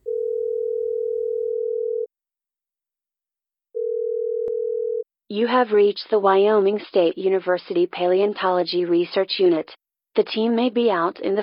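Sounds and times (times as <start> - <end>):
telephone ringback tone over the line: 0.0 - 2.1, 3.8 - 5.0
speech: 5.3 - 11.4.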